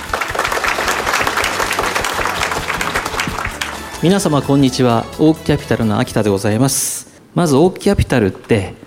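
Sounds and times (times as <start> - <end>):
audience applause: 0.0 - 4.2
speech: 4.0 - 8.8.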